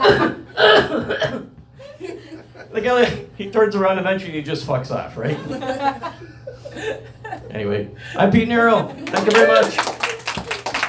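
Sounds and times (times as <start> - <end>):
loud harsh deliberately forced coughs: 0.0 - 1.6
laughter: 1.8 - 3.3, 5.2 - 7.7, 8.8 - 9.9
speech: 2.8 - 10.0.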